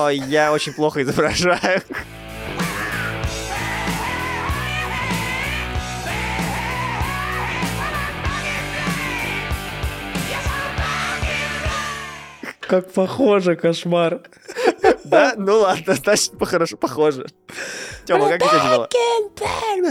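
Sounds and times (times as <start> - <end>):
speech: 0.0 - 2.2, 12.7 - 14.4, 15.1 - 19.8
laughter: 0.0 - 4.0, 14.3 - 16.6, 18.0 - 18.9
distorted guitars: 2.0 - 12.2
man yelling into a microphone in raspy high-pitched hard-rock style: 6.0 - 9.6, 18.0 - 18.9.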